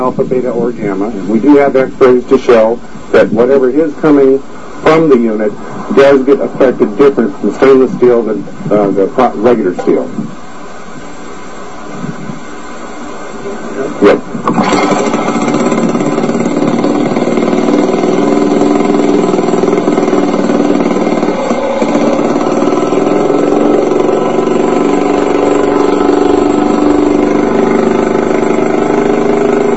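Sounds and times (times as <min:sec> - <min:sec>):
speech: 0:00.1 - 0:10.3
car engine idling: 0:14.4 - 0:29.7.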